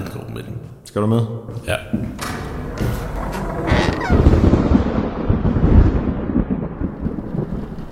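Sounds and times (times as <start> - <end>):
speech: 0.4 - 2.4
deep rolling rumbles: 2.1 - 7.9
steady rain: 3.0 - 7.9.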